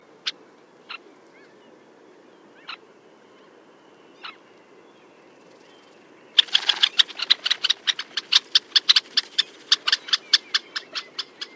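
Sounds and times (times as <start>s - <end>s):
Red-necked Phalarope Phalaropus lobatus calling: 6.4s - 11.5s.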